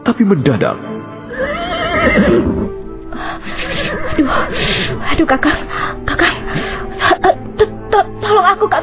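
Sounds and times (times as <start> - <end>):
speech: 0.1 - 0.9, 2.0 - 8.8
horse neighing with a long shrill whinny: 1.3 - 4.9.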